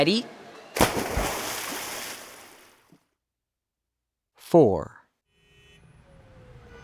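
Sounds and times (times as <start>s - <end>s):
speech: 0.0s - 0.4s, 4.5s - 5.0s
loud splash of someone jumping into water: 0.8s - 2.7s.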